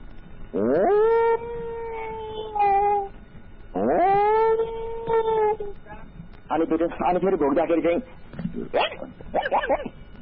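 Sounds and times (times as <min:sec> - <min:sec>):
human voice imitating dog howls and yips: 0:00.6 - 0:03.1, 0:03.8 - 0:05.8
speech: 0:06.6 - 0:10.0.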